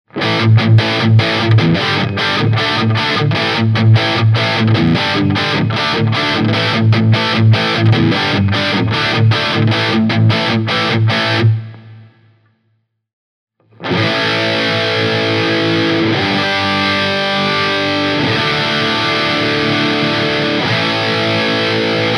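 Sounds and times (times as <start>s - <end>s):
dirty electric guitar with humbucker pickups: 0.1s - 12.4s, 13.6s - 22.1s.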